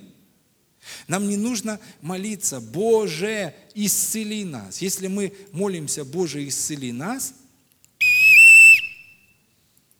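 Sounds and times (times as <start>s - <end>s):
speech: 1.1s - 7.4s
shrill whistle blast: 8.0s - 9.4s.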